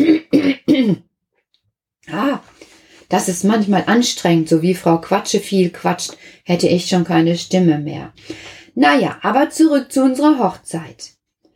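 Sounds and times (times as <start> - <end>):
person clearing throat: 0.0 - 1.1
speech: 2.1 - 2.5, 3.1 - 11.2.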